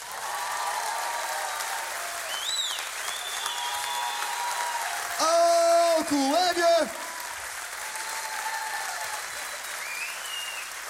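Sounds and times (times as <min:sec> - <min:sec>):
sustained applause from a sizable crowd: 0:00.0 - 0:10.8
whistles: 0:02.3 - 0:04.3, 0:09.4 - 0:10.8
speech: 0:06.1 - 0:07.0.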